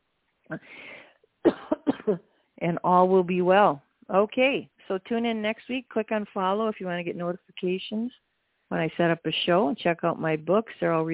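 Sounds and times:
speech: 0.5s - 1.1s, 2.1s - 11.1s
person coughing: 1.5s - 2.2s.

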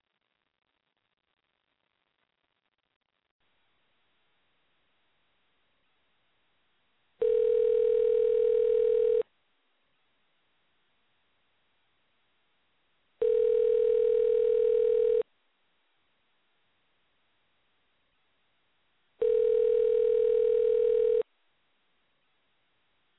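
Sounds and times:
outgoing telephone call ringback tones: 7.2s - 9.2s, 13.2s - 15.2s, 19.2s - 21.2s.

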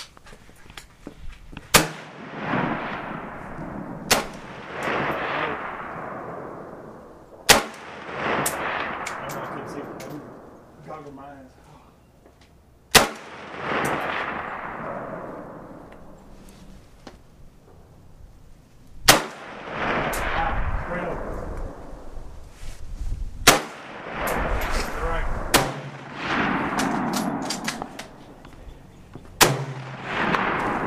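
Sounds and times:
outdoor ambience: 0.0s - 30.8s
gunshots fired at shooting range targets: 1.7s - 10.6s, 12.9s - 15.9s, 19.1s - 22.0s, 23.4s - 28.3s, 29.4s - 30.8s.

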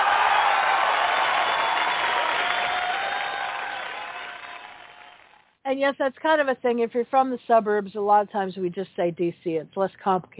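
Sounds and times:
crowd applauding: 0.0s - 5.4s
speech: 5.7s - 10.3s.

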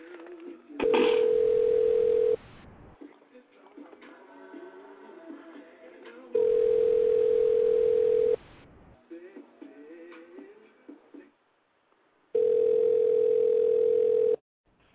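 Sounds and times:
telephone ringing tones on a call: 0.8s - 2.4s, 6.4s - 8.4s, 12.4s - 14.4s.

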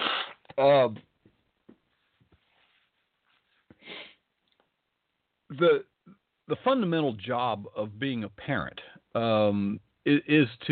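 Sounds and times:
speech: 0.6s - 1.1s, 5.5s - 5.9s, 6.5s - 10.6s
person sniffling close to the mic: 3.5s - 4.2s.

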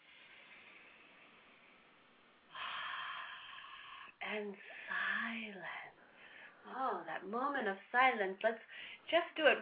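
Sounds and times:
soft airy breathing in and out during a guided breathing exercise: 0.0s - 6.6s
speech: 4.3s - 5.9s, 6.6s - 9.5s.

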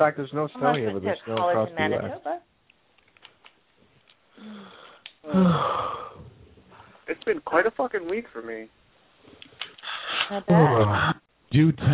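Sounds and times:
speech: 0.0s - 2.5s, 4.4s - 6.0s, 7.1s - 9.4s, 10.3s - 11.9s
person yawning with a low voiced groan: 4.4s - 6.4s.

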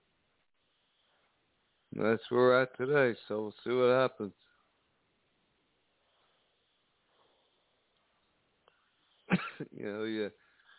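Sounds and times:
speech: 2.0s - 4.4s, 9.8s - 10.5s
hoarse throat clearing: 9.3s - 9.7s
person coughing: 9.3s - 9.7s.

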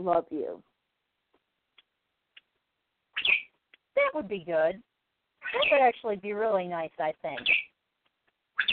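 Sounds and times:
speech: 0.0s - 0.7s, 4.0s - 7.6s
faint bird chirps: 2.3s - 3.6s, 5.4s - 6.0s, 7.3s - 7.8s, 8.5s - 8.7s
pet bird screeching: 3.1s - 3.5s, 5.4s - 5.9s, 7.4s - 7.8s, 8.6s - 8.7s.

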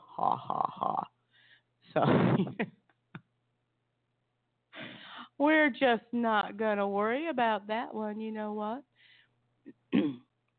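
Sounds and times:
speech: 0.2s - 1.1s, 1.9s - 2.8s, 5.4s - 8.9s
throat clearing: 9.7s - 10.3s.

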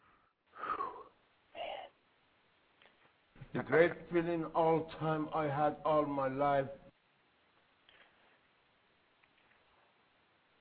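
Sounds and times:
heavy wheezing breaths of someone catching their breath after intense exertion: 0.0s - 1.9s
speech: 3.6s - 6.8s.

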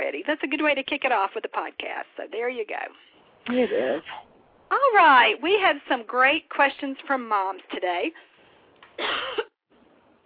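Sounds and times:
speech: 0.1s - 8.3s, 9.0s - 9.4s
harsh cough: 9.0s - 9.6s.

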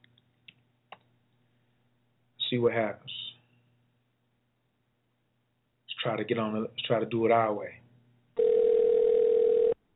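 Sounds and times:
speech: 2.5s - 3.3s, 6.0s - 7.8s
electronic ringing tone over a phone line: 8.4s - 9.8s.

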